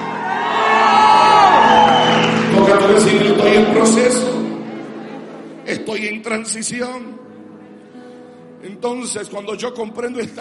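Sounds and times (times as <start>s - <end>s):
church service audience shouting hallelujah and cheering: 0.0s - 4.4s
speech: 3.0s - 4.4s, 5.9s - 7.4s, 8.6s - 10.3s.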